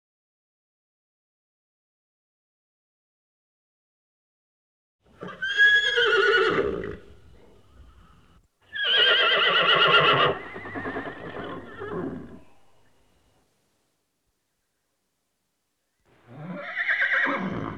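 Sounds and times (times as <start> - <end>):
horse neighing: 5.1 - 12.8, 16.2 - 17.7.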